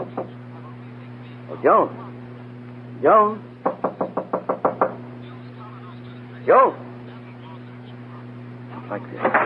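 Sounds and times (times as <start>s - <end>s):
low steady hum: 0.0s - 9.4s
speech: 1.6s - 2.0s, 3.0s - 3.5s, 6.4s - 6.8s, 8.9s - 9.4s
knocking on a wooden door: 3.6s - 5.0s.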